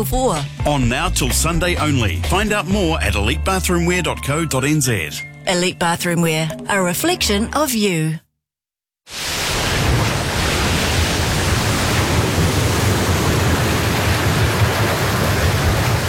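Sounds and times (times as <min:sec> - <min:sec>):
speech: 0:00.0 - 0:08.2, 0:09.1 - 0:09.4
ocean waves at sea roaring: 0:09.1 - 0:16.0.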